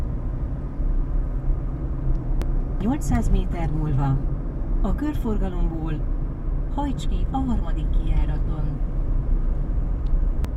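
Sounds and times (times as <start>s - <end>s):
engine and tire drone inside a moving car: 0.0s - 10.5s
speech: 2.8s - 6.2s, 6.8s - 8.9s.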